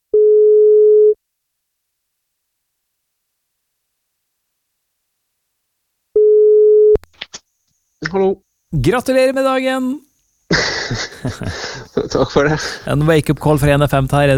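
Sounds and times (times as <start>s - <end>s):
electronic telephone ringback tone: 0.1s - 1.2s, 6.2s - 7.0s
speech: 8.1s - 14.3s
laughter: 10.5s - 13.0s.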